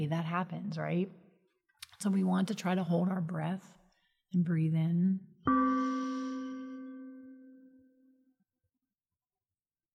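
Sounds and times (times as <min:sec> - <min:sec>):
speech: 0:00.0 - 0:01.2, 0:02.0 - 0:06.3
meditation gong ringing: 0:05.5 - 0:07.7.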